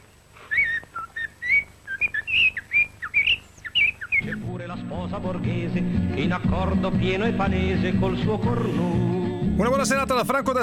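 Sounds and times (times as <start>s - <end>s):
male blackbird singing in a dense wood: 0.5s - 4.6s
speech: 5.1s - 10.6s.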